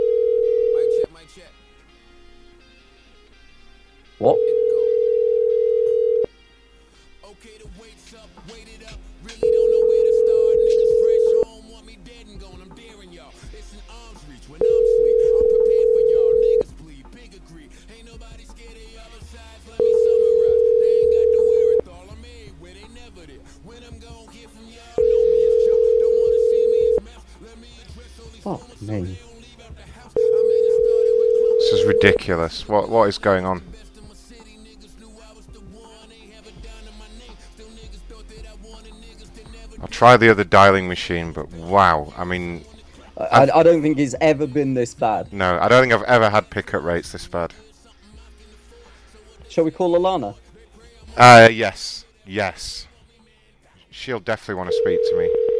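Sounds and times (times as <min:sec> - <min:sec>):
ringback tones of an unanswered call to a cell phone: 0:00.0 - 0:01.1, 0:04.2 - 0:06.3, 0:09.4 - 0:11.5, 0:14.6 - 0:16.7, 0:19.8 - 0:21.8, 0:25.0 - 0:27.0, 0:30.2 - 0:32.3, 0:54.7 - 0:55.5
murmur of voices: 0:28.4 - 0:29.2
speech: 0:32.2 - 0:33.8, 0:40.0 - 0:42.7, 0:43.4 - 0:47.6, 0:49.6 - 0:50.4, 0:51.2 - 0:52.9, 0:54.0 - 0:55.4.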